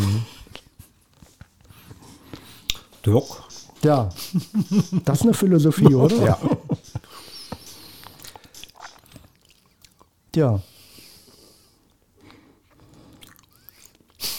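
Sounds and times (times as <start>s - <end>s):
speech: 3.1s - 6.6s, 10.4s - 10.7s
laughter: 4.1s - 7.3s
chewing sticky cookies: 8.0s - 10.2s, 12.7s - 14.2s.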